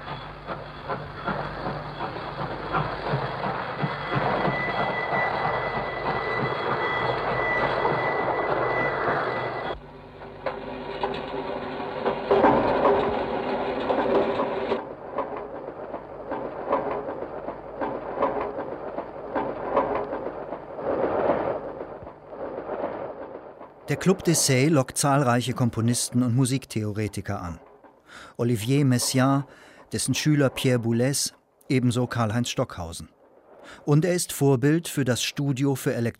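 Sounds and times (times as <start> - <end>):
recorded railway train chugging and clatter in a musique concrète study: 0.0 - 33.0
steady high whistle-like tone: 3.8 - 9.8
speech: 24.0 - 27.7, 28.4 - 36.1.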